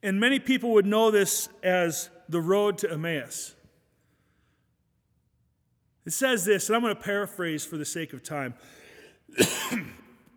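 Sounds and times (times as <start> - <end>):
speech: 0.0 - 3.6, 6.0 - 10.0
cough: 9.3 - 10.3.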